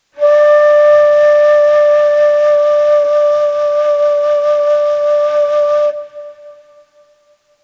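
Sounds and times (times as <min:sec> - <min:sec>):
ney flute melody in Chargah mode: 0:00.0 - 0:07.6.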